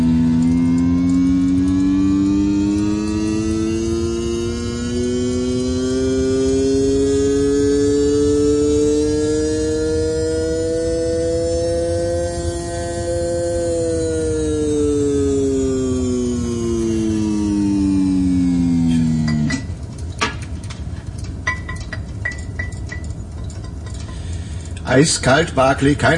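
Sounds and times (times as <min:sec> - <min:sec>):
car engine running and revving: 0:00.0 - 0:26.1
faint clicks and rattles: 0:19.3 - 0:25.5
speech: 0:25.0 - 0:26.1.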